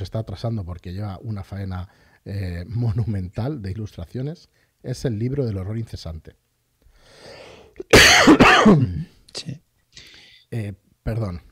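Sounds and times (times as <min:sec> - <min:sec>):
speech: 0:00.0 - 0:06.4, 0:07.1 - 0:09.7, 0:10.5 - 0:11.5
person coughing harshly: 0:07.8 - 0:09.1.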